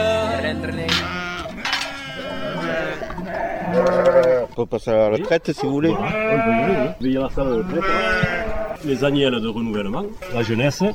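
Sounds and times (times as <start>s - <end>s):
flock of sheep bleating: 0.0s - 4.5s, 5.8s - 9.0s, 10.2s - 10.6s
speech: 4.6s - 10.9s.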